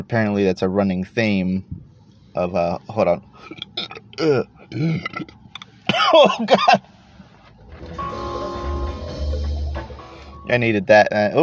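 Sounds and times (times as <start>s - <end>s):
speech: 0.0s - 1.8s, 2.4s - 5.4s, 6.0s - 6.9s, 10.5s - 11.4s
loud croaking burp: 3.5s - 5.4s.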